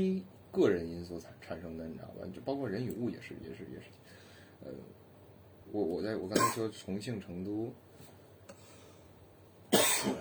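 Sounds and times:
speech: 0.0s - 5.0s, 5.7s - 8.1s
person coughing: 6.4s - 6.7s, 9.7s - 10.2s.

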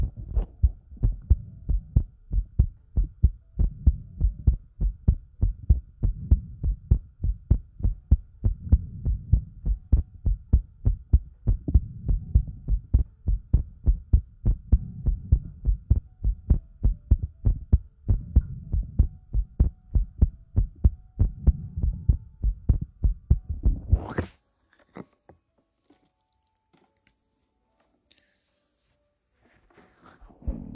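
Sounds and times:
heartbeat thudding low and steady: 0.0s - 24.3s, 30.4s - 30.7s.

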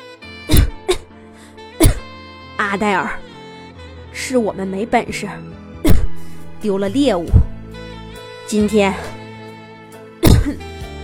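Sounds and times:
soft sustained musical background: 0.0s - 11.0s
woman coughing: 0.5s - 1.1s, 1.8s - 2.1s, 5.8s - 6.1s, 10.2s - 10.6s
speech: 2.6s - 3.3s, 4.2s - 5.7s, 6.6s - 7.5s, 8.5s - 9.1s.

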